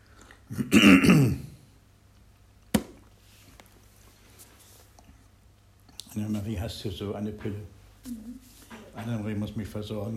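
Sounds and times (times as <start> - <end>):
speech: 0.5 - 1.4, 6.7 - 10.1
throat clearing: 0.5 - 1.6.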